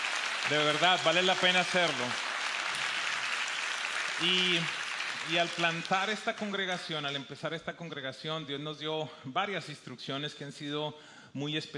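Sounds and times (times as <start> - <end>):
audience applauding: 0.0 - 7.1
speech: 0.5 - 2.2, 4.2 - 11.7.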